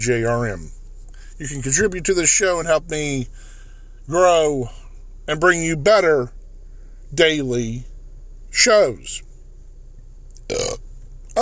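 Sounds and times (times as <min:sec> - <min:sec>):
speech: 0:00.0 - 0:00.8, 0:01.4 - 0:06.4, 0:07.1 - 0:07.9, 0:08.5 - 0:09.3, 0:10.5 - 0:10.7
loud burp: 0:10.5 - 0:10.8.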